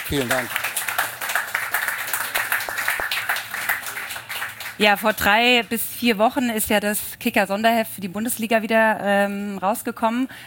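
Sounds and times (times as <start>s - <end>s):
audience applause: 0.0s - 5.2s
speech: 0.1s - 0.7s, 4.8s - 10.4s.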